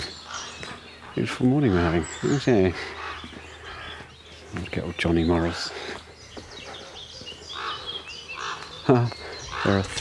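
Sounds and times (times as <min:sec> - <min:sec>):
ravens calling: 0:00.0 - 0:09.9
smaller birds chirping outdoors: 0:00.0 - 0:09.9
speech: 0:01.2 - 0:03.0, 0:04.8 - 0:06.0, 0:08.9 - 0:09.9.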